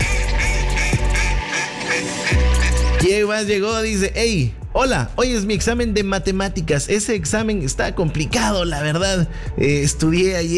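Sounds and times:
heavy low hum: 0:00.0 - 0:01.4
ducks quacking: 0:00.0 - 0:03.1
speech: 0:03.0 - 0:10.5.

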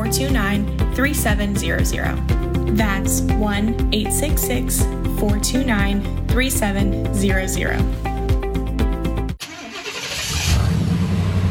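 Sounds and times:
speech: 0:00.1 - 0:08.1
Suburban truck engine cranking and starting: 0:09.4 - 0:11.4.

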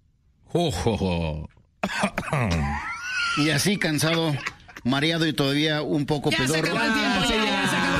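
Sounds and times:
speech: 0:00.5 - 0:07.9
rough choking coughs: 0:01.8 - 0:02.9
theatrical drawn-out evil laugh: 0:02.0 - 0:04.8.

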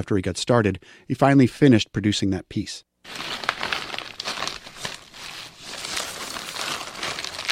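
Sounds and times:
speech: 0:00.0 - 0:03.4
small plastic bags crinkling and rustling as they are sorted: 0:03.1 - 0:07.5.

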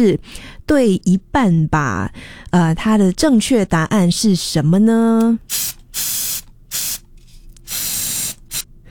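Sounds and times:
speech: 0:00.0 - 0:06.4
aerosol spray paint hissing from a can: 0:05.4 - 0:08.7.

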